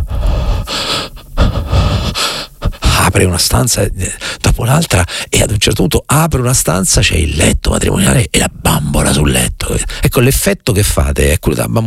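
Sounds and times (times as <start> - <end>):
person imitating heavy rasping horror-film breathing: 0.0 - 3.1
speech: 3.2 - 11.8.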